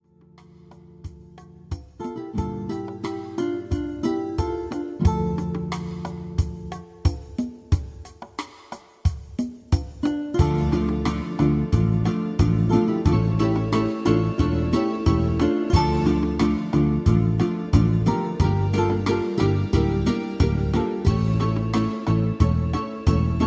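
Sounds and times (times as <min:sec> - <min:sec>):
mariachi ballad: 0:02.0 - 0:06.9, 0:10.0 - 0:23.4.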